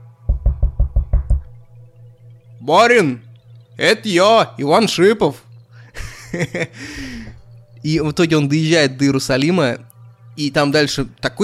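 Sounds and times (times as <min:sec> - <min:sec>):
low steady hum: 0:00.0 - 0:11.4
knocking on a door: 0:00.3 - 0:01.5
speech: 0:02.6 - 0:05.4, 0:06.3 - 0:11.4
laughter: 0:05.9 - 0:06.8.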